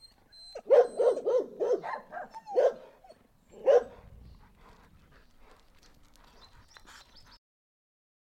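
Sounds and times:
dog barking: 0.6 - 3.0, 3.6 - 4.0.

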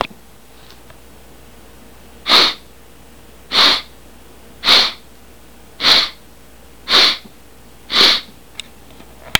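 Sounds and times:
snort: 2.3 - 2.6, 3.5 - 3.9, 4.6 - 5.0, 5.8 - 6.2, 6.9 - 7.3, 7.9 - 8.3.

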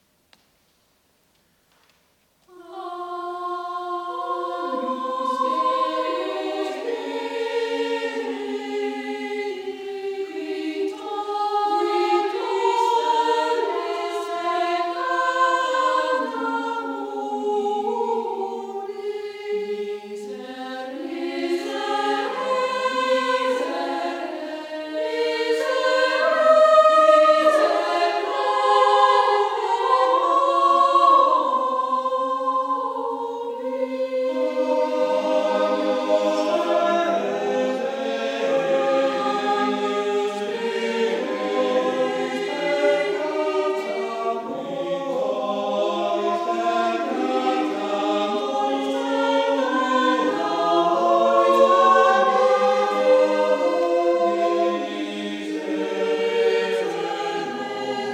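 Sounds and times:
choir singing in a church: 2.5 - 58.1.

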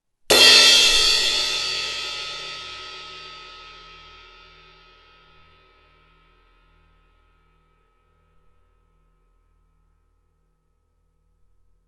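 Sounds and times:
Projection crash cymbal: 0.3 - 6.6.

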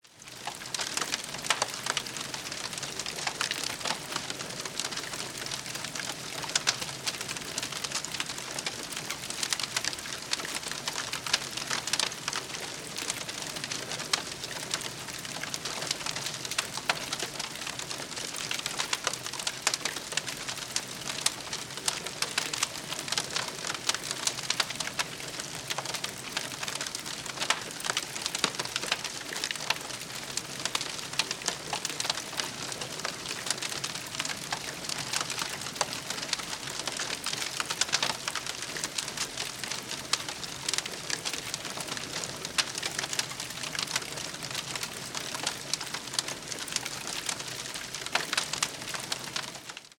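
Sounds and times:
bonfire flames sizzling: 0.2 - 49.8.

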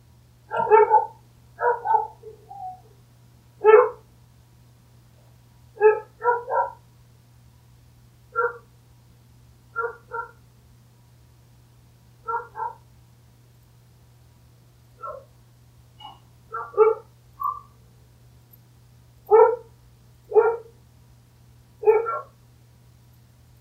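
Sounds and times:
dog barking: 0.5 - 2.9, 3.6 - 4.0, 5.8 - 6.8, 8.3 - 8.7, 9.8 - 10.4, 12.2 - 12.8, 15.0 - 15.3, 16.0 - 17.8, 19.3 - 19.7, 20.3 - 20.8, 21.8 - 22.4.

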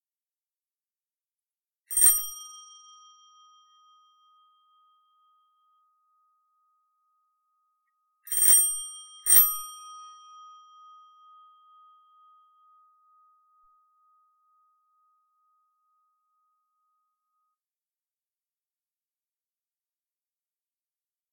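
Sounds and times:
hotel bell tremolo: 2.0 - 6.6, 8.3 - 16.8.

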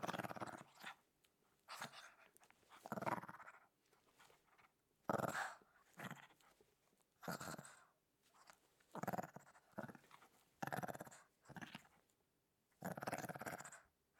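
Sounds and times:
small dog growling: 0.0 - 1.0, 1.7 - 3.7, 5.1 - 6.4, 7.2 - 7.9, 8.9 - 12.0, 12.8 - 13.9.

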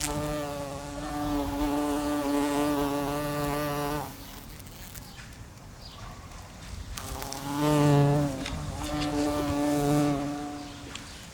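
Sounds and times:
house fly buzzing: 0.0 - 5.2, 7.0 - 11.0.

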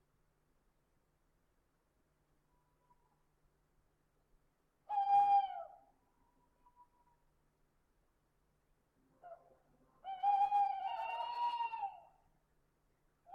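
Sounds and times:
owl hooting: 4.9 - 5.8, 10.0 - 12.1.

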